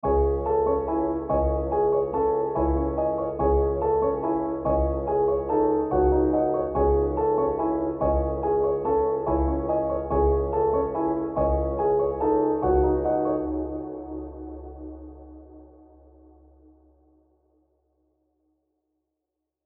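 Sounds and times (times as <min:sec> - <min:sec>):
drill music piano loops in C minor at 143 BPM: 0:00.0 - 0:15.6.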